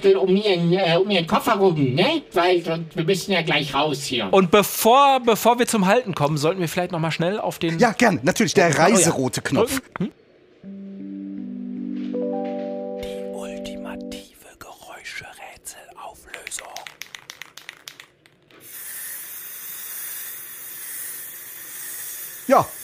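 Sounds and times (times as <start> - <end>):
speech: 0.0 - 10.8, 22.5 - 22.8
short chiming jingle: 11.4 - 14.2
spray can shaken and rattling: 16.3 - 22.8.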